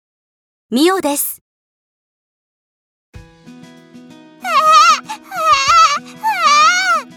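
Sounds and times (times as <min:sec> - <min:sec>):
speech: 0:00.7 - 0:01.4
baby crying: 0:04.4 - 0:07.1.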